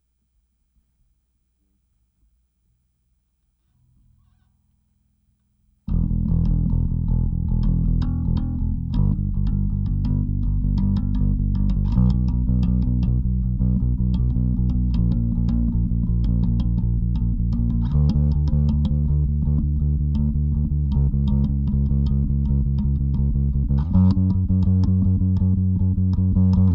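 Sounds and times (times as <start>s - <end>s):
compressed overdriven bass: 5.9s - 26.7s.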